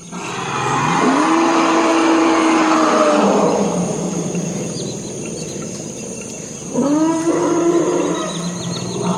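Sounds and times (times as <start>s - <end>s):
forest elephants bellowing at night in a Congo wetland: 0.0s - 4.6s, 6.7s - 9.1s
chorus of night insects and crickets: 0.0s - 9.1s.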